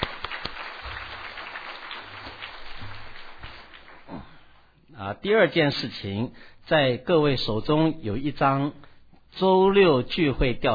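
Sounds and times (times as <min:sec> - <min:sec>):
audience applause welcoming newcomers: 0:00.0 - 0:04.4
speech: 0:05.0 - 0:10.7.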